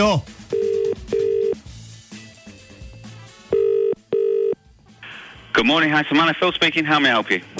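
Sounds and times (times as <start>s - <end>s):
speech: 0.0s - 0.4s, 5.6s - 7.5s
telephone ringback tone: 0.5s - 1.6s, 3.5s - 4.6s.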